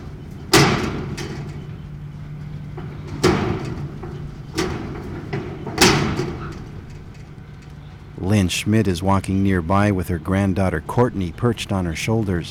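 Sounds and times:
wind-blown loose tin roofing sheet slamming against wooden rafters: 0:00.0 - 0:08.2
low steady hum: 0:00.0 - 0:12.4
speech: 0:08.4 - 0:12.4.

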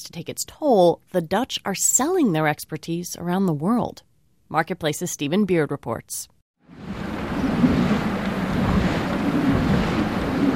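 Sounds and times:
speech: 0:00.0 - 0:07.6
wind rushing around the four giant sails of a traditional Dutch windmill: 0:06.7 - 0:10.5.

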